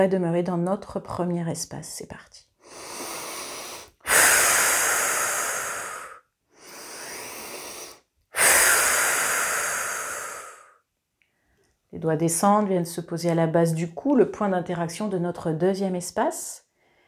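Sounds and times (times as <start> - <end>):
speech: 0.0 - 2.9, 12.0 - 16.6
slow breathing during a guided relaxation exercise: 2.6 - 11.8, 16.8 - 17.0.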